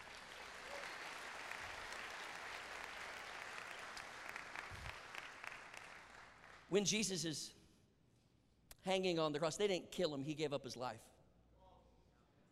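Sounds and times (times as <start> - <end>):
audience applause: 0.0 - 6.7
speech: 6.7 - 7.6, 8.9 - 11.2.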